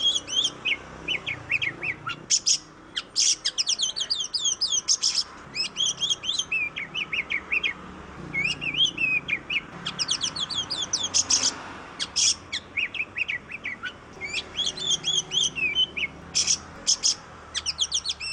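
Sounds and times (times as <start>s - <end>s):
Oriental magpie-robin song of chirps buzzy rattles and whistled notes: 0.0s - 18.3s.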